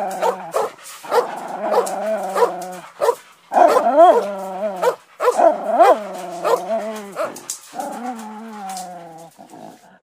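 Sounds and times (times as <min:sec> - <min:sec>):
dog barking and whining at a kennel: 0:00.0 - 0:09.3.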